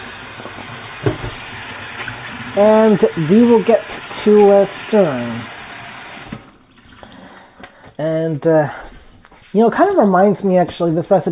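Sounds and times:
running water pouring into a sink as oily hands are washed: 0.0s - 7.5s
speech: 2.6s - 5.5s, 8.0s - 8.8s, 9.5s - 11.3s.

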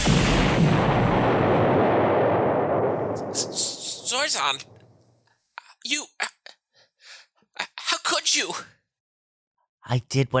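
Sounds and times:
high-impact missile launching: 0.0s - 5.0s
speech: 4.1s - 4.8s, 8.2s - 8.8s, 9.9s - 10.3s.

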